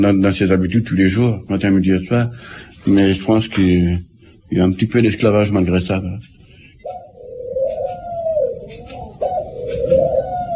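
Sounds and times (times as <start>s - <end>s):
speech: 0.0s - 7.0s
faint noise: 0.0s - 10.5s
doves cooing: 6.3s - 10.5s.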